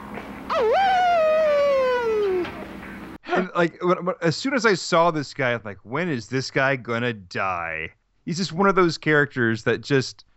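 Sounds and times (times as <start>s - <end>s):
human voice imitating a wolf howl: 0.5s - 2.4s
speech: 0.6s - 0.8s, 3.5s - 10.3s.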